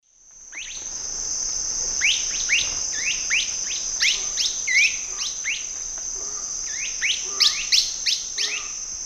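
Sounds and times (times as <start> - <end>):
pearly antshrike Megastictus margaritatus pair calling in South American Eastern Lowlands: 2.0 - 8.8.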